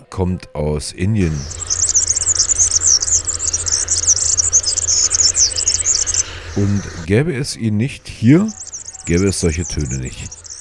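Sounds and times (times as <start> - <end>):
speech: 0.2 - 1.8, 6.6 - 10.4
European serin singing: 1.2 - 7.1, 8.2 - 10.6.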